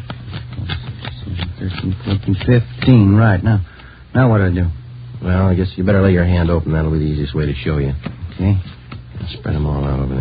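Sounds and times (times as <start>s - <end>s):
playing cards counted out by hand: 0.0s - 4.0s, 7.4s - 10.2s
speech: 1.6s - 10.2s.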